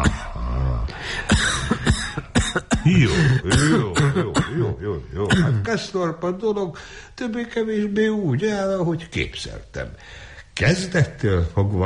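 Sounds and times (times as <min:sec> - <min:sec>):
harsh dry coughing: 0:00.0 - 0:00.4, 0:01.0 - 0:05.7
speech: 0:02.9 - 0:11.8.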